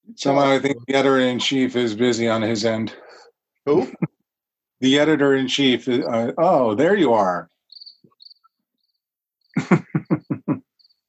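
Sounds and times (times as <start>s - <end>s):
speech: 0.2s - 4.1s, 4.8s - 7.5s, 9.6s - 10.7s
laughter: 0.4s - 2.6s, 3.7s - 4.1s, 9.6s - 10.6s
crickets chirping: 7.4s - 11.0s.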